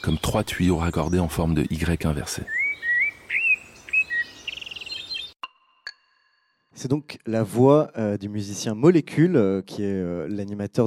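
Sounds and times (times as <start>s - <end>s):
speech: 0.0s - 2.6s, 6.8s - 10.8s
bird singing whistled notes and trill: 0.0s - 5.4s
sharp bird chirps: 0.0s - 6.2s.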